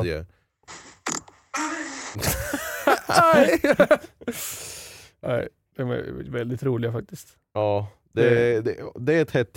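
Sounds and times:
speech: 0.0 - 0.8, 2.2 - 9.5
recorded fart played back through a speaker: 0.7 - 2.2
people laughing and reacting: 2.2 - 4.4.

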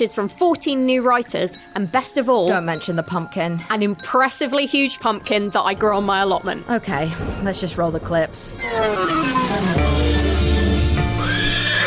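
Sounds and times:
speech: 0.0 - 9.8
horse whinnying: 8.6 - 11.8.

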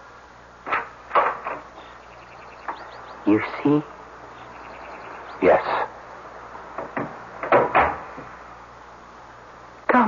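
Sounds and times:
door opening clunks and rattles: 0.6 - 1.9, 6.7 - 8.4
speech: 3.3 - 4.0.

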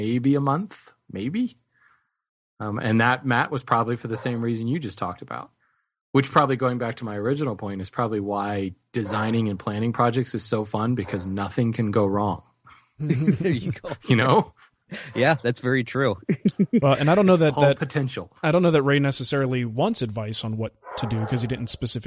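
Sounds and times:
speech: 0.0 - 1.6, 2.6 - 22.0
dogs barking in the background: 3.7 - 4.7, 9.0 - 9.4, 11.0 - 11.3, 20.8 - 21.8
brief laughter: 13.0 - 14.2, 14.9 - 15.2, 16.3 - 18.0.

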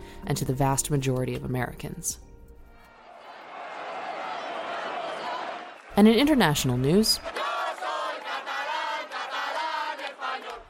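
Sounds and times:
speech: 0.2 - 2.3, 6.0 - 7.4
protest crowd chanting at a demonstration in Barcelona Spain: 2.9 - 6.0, 6.7 - 10.6.

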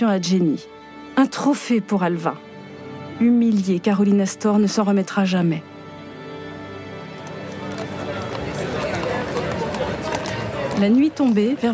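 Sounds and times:
speech: 0.0 - 2.5, 3.2 - 5.7, 10.8 - 11.7
hooves of horse-drawn carriages clip-clopping on pavement: 6.6 - 11.7
busy murmur of many voices in a crowded street: 7.1 - 11.7.

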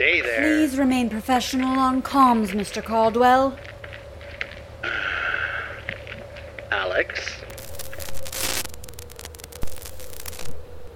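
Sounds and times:
speech: 0.0 - 3.8, 7.0 - 7.4
steady electrical hum: 0.0 - 10.9
crackling radio interference static: 7.1 - 10.9.

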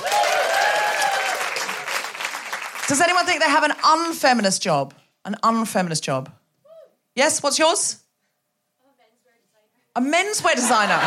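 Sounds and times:
people cheering: 0.0 - 2.8
crowd applauding: 0.0 - 3.4
speech: 2.9 - 6.4, 7.2 - 8.0, 10.0 - 11.0
laughter: 10.4 - 11.0.

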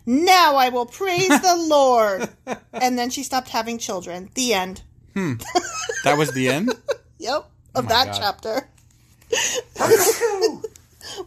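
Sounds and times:
speech: 0.1 - 8.7, 9.3 - 11.2
laughter: 5.2 - 7.1
sneeze: 9.8 - 10.4.

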